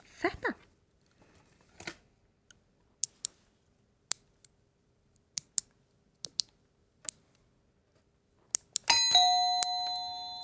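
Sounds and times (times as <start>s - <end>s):
toenails being clipped: 3.0s - 3.3s, 5.4s - 6.5s, 8.6s - 9.0s
bright ringing chime: 8.9s - 10.4s.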